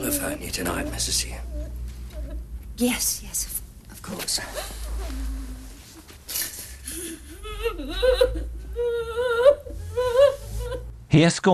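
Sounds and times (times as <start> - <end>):
woman sobbing in an armchair: 0.0 - 2.6, 4.3 - 10.9
speech: 0.2 - 1.6, 2.8 - 5.4, 7.1 - 10.1, 11.1 - 11.5.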